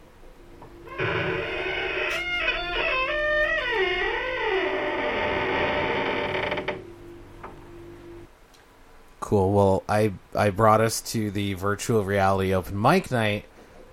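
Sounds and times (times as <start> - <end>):
heavy door creaking shut at a virtual reality open mic night: 0.9 - 6.9
speech: 9.3 - 13.5.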